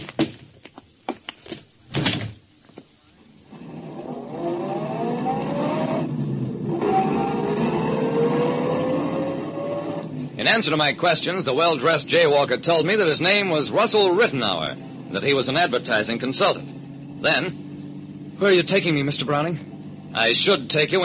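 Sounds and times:
car engine humming as the vehicle pulls away and drives: 3.3 - 21.0
speech: 10.5 - 17.6, 18.4 - 21.0.

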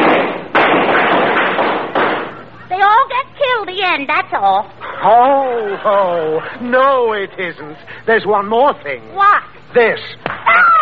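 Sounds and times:
gunshots: 0.0 - 2.4
speech: 3.7 - 10.7.

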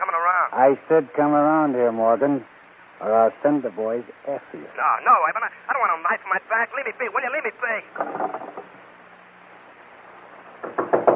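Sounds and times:
faint low hum: 0.0 - 11.1
speech: 0.1 - 8.7
knocking on a door: 10.6 - 11.1.

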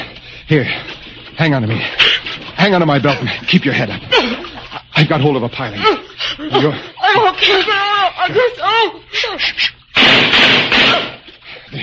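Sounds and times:
speech: 0.5 - 4.4, 5.0 - 11.1
gunfire: 10.0 - 11.2.

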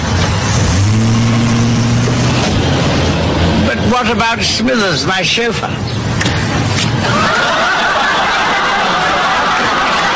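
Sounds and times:
car engine starting and revving: 0.0 - 4.6
speech: 4.0 - 6.0
laughter: 7.0 - 10.1.

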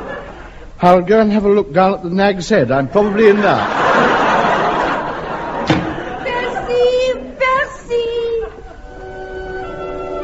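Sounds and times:
laughter: 0.0 - 0.6, 3.0 - 7.4, 8.1 - 9.1
speech: 0.8 - 4.3
door slamming shut with a sharp solid bang: 5.6 - 6.1.

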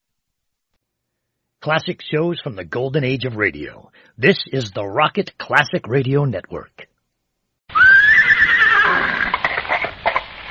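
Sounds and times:
speech: 1.6 - 6.8
pony pulling a trap whinnying: 7.7 - 9.9
pony hooves clip-clopping: 7.7 - 10.5.

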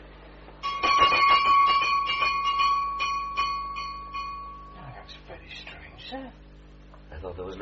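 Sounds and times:
small servant's call bell for a guest's room ringing: 0.6 - 4.9.

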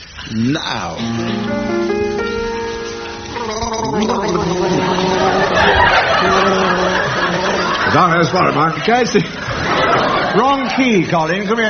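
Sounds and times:
speech: 0.3 - 1.8, 7.9 - 9.5, 10.3 - 11.6
two men gargling water as a tune: 3.3 - 8.3
laughter: 3.3 - 11.6.

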